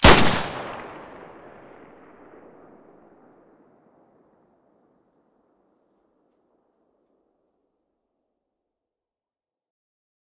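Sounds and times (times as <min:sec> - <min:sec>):
M9A3 pistol gunshot: 0:00.0 - 0:01.9.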